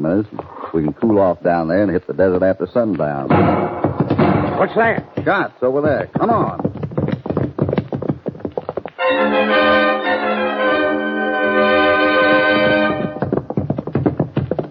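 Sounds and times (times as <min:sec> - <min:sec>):
speech: 0:00.0 - 0:03.8, 0:04.6 - 0:07.1
hoofbeats of a fast horse: 0:03.0 - 0:14.6.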